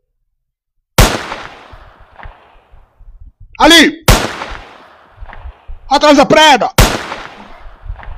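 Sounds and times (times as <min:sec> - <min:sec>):
video game gunshot: 0:01.0 - 0:02.5, 0:04.1 - 0:05.6, 0:06.8 - 0:08.1
soft low thuds: 0:01.0 - 0:06.0, 0:06.8 - 0:08.1
speech: 0:03.6 - 0:04.0, 0:05.9 - 0:06.9.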